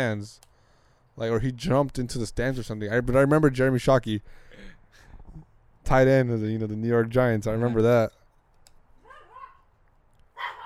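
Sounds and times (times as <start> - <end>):
speech: 0.0 - 0.5, 1.2 - 8.2
dog giving a rising whiny yelp: 9.0 - 9.7, 10.4 - 10.6
dog barking: 9.1 - 9.6, 10.4 - 10.6.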